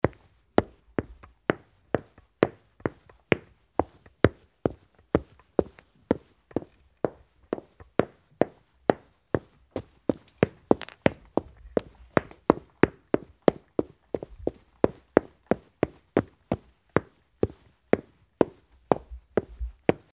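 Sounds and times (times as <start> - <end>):
footsteps in hard shoes: 0.0 - 20.1.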